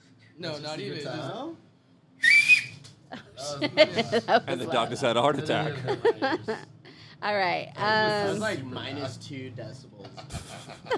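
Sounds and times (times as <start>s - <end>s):
speech: 0.4s - 1.7s, 3.4s - 10.9s
loud shrill human whistle: 2.2s - 2.8s
laughter: 3.2s - 4.6s, 5.5s - 6.7s, 10.2s - 10.9s.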